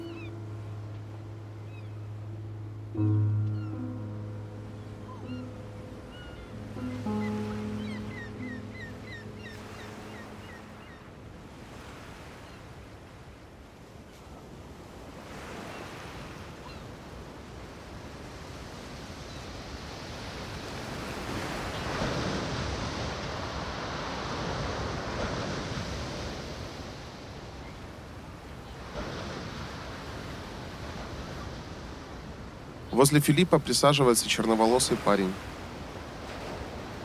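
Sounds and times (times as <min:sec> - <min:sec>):
sustained tones: 0:00.0 - 0:10.4
sea waves washing onto the shore: 0:05.2 - 0:37.0
speech: 0:33.0 - 0:35.5.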